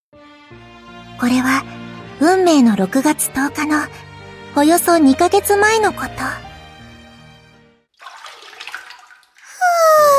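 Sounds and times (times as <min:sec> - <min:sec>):
speech: 0:00.5 - 0:06.4
water splashing in a bathtub: 0:07.9 - 0:10.1.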